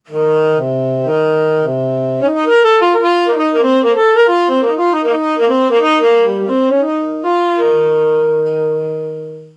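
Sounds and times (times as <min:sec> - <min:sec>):
smooth crystal saxophone: 0:00.0 - 0:09.5.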